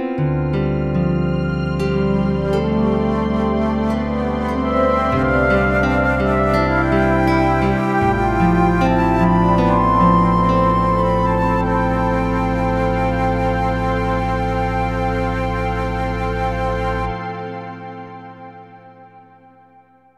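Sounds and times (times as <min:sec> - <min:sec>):
pastoral synthesizer music: 0:00.2 - 0:20.1.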